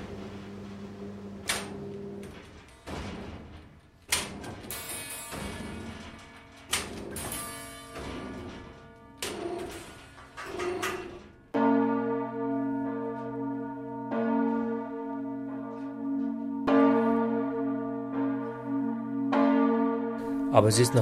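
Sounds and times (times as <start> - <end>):
large bronze church bell ringing: 4.8 - 10.8, 11.5 - 21.0
speech: 20.6 - 21.0.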